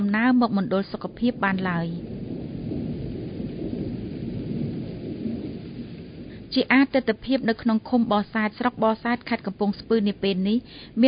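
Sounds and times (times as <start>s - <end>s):
steady rain on a cold sunless day in Kampong Speu province Cambodia: 0.0s - 11.0s
speech: 0.1s - 2.1s, 6.5s - 11.0s.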